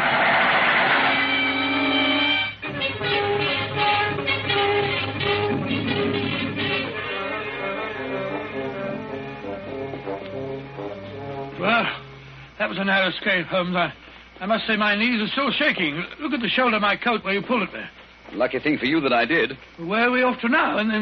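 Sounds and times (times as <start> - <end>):
hissing noise of a passing train: 0.0 - 12.7
train passing by on the tracks: 0.0 - 12.8
speech: 12.8 - 21.0.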